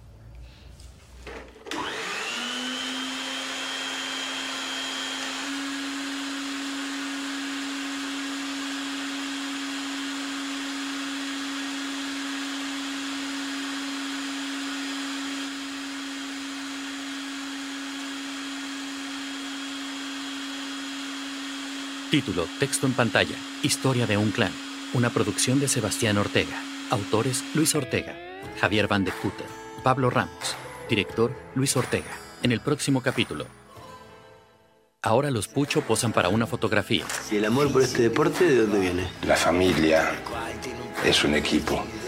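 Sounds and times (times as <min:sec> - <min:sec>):
vacuum cleaner running: 0:01.2 - 0:29.8, 0:37.0 - 0:42.0
speech: 0:22.1 - 0:33.6, 0:35.0 - 0:40.4, 0:41.0 - 0:42.0.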